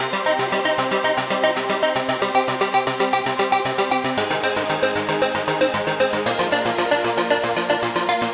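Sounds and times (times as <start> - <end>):
classic detuned synth arpeggio pattern: 0.0 - 8.3.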